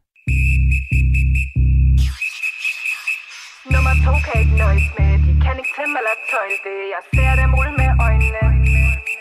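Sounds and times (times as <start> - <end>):
whistled melody from dance song: 0.2 - 9.2
heavy pulsing bass chords: 0.3 - 2.2, 3.7 - 5.6, 7.2 - 9.0
busier thinner dance backing: 3.3 - 9.2
speech: 4.0 - 8.8.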